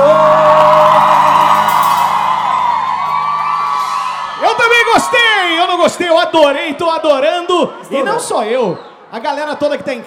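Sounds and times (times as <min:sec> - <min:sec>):
whoops and yells: 0:00.0 - 0:05.6
crowd shouting and cheering: 0:00.0 - 0:09.2
speech: 0:05.8 - 0:10.0.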